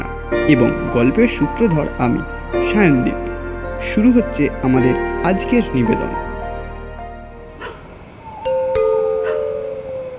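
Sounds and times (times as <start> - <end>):
soft low sustained tone: 0.0 - 10.1
speech: 0.5 - 3.2, 3.8 - 6.2
doorbell giving two bright chime tones: 8.5 - 10.1.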